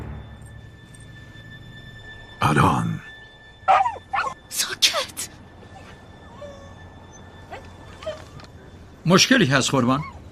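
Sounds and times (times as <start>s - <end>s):
speech: 2.5s - 3.0s, 9.1s - 10.2s
dog barking with sharp yips: 3.7s - 4.4s.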